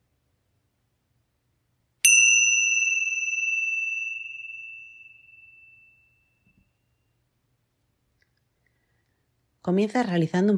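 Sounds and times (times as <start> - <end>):
small meditation bell struck and ringing: 2.0 - 7.0
speech: 9.6 - 10.5.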